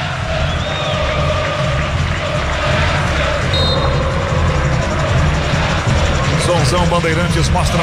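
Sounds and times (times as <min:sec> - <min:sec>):
large crowd of football fans cheering at a stadium: 0:00.0 - 0:07.8
speech: 0:06.7 - 0:07.8.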